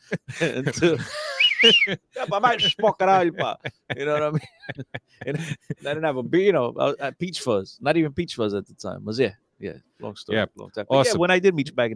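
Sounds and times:
laughter: 0:00.0 - 0:06.1
speech: 0:00.1 - 0:11.9
person imitating a catcall wolf whistle: 0:01.3 - 0:02.8.

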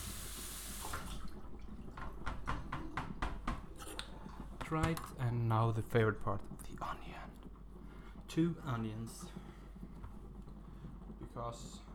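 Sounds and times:
water running from a tap into a sink: 0:00.0 - 0:03.4
speech: 0:04.7 - 0:07.5, 0:08.3 - 0:09.4, 0:11.4 - 0:11.9.

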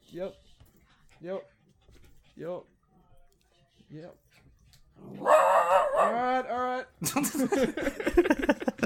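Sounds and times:
excited dogs panting after a walk: 0:00.0 - 0:05.7
speech: 0:00.2 - 0:00.4, 0:01.2 - 0:01.6, 0:02.4 - 0:02.8, 0:03.9 - 0:04.3, 0:05.0 - 0:08.8
excited dogs barking after a walk: 0:05.1 - 0:06.4
laughter: 0:07.0 - 0:08.8.

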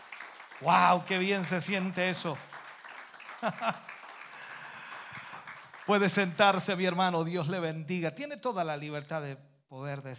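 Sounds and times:
church audience clapping in praise: 0:00.0 - 0:07.6
speech: 0:00.6 - 0:02.5, 0:03.4 - 0:03.9, 0:05.9 - 0:10.1
laughter: 0:03.3 - 0:04.6.

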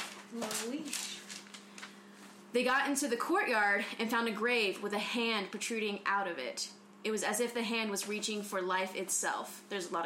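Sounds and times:
paper page turning: 0:00.0 - 0:02.0
low steady hum: 0:00.0 - 0:10.0
speech: 0:00.3 - 0:01.2, 0:02.5 - 0:10.0.

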